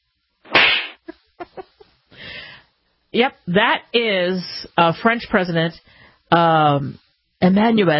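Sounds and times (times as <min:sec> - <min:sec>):
slap to the face of a president greeting a crowd in France: 0:00.5 - 0:01.0
speech: 0:03.1 - 0:07.9.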